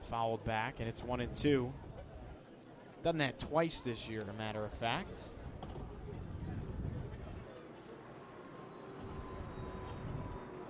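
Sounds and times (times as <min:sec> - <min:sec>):
faint chatter: 0:00.0 - 0:10.6
speech: 0:00.1 - 0:01.9, 0:03.0 - 0:05.4
airplane passing overhead: 0:05.3 - 0:10.6.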